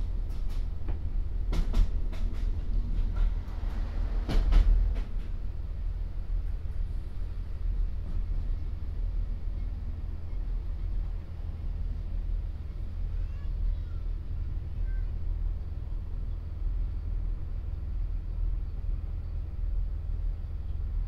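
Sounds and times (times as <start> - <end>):
rail clicks and clunks: 0.0 - 6.9
train rolling into a station with low rumble: 0.0 - 21.0.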